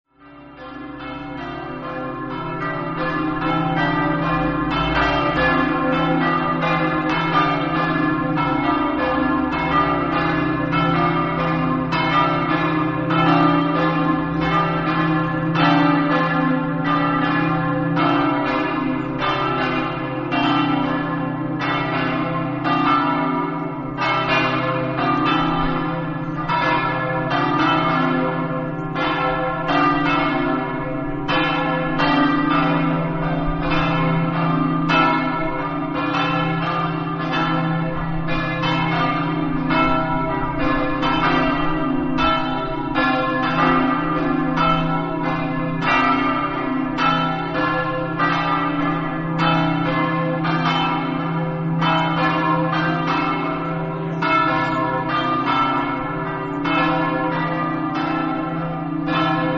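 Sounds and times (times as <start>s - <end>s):
bells on a mountain: 0.2s - 59.5s.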